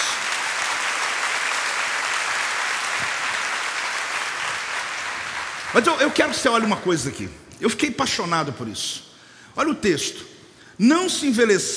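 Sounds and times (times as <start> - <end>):
audience applauding: 0.0 - 6.9
speech: 5.7 - 11.7.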